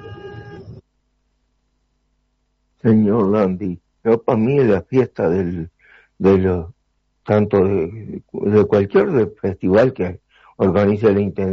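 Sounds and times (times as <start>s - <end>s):
car horn blast: 0.0s - 0.8s
faint low hum: 0.0s - 11.5s
speech: 2.8s - 11.5s.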